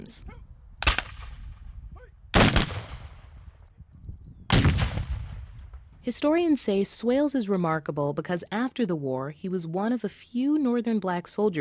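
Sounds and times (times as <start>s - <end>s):
speech: 0.0s - 0.5s, 6.0s - 11.6s
cannon salute blasts outdoors: 0.8s - 1.6s, 2.3s - 3.6s, 4.5s - 6.0s.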